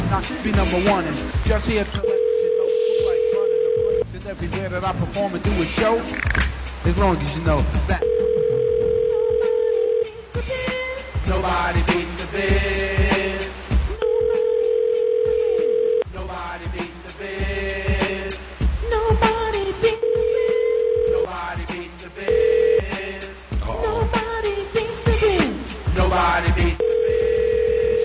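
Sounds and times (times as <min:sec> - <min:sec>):
loud rhythmic beat: 0:00.0 - 0:02.2, 0:03.0 - 0:08.6, 0:10.4 - 0:14.4, 0:15.4 - 0:28.0
speech: 0:00.1 - 0:02.3, 0:04.3 - 0:08.2, 0:11.3 - 0:13.0
telephone ringback tone before voicemail: 0:02.0 - 0:04.0, 0:08.0 - 0:10.1, 0:14.0 - 0:16.0, 0:20.0 - 0:21.2, 0:22.3 - 0:22.9, 0:26.8 - 0:28.0.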